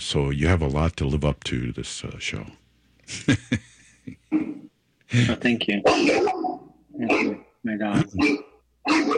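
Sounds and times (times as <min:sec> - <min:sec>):
speech: 0:00.0 - 0:04.5, 0:05.1 - 0:09.1
dog barking: 0:05.9 - 0:07.4, 0:08.2 - 0:09.1.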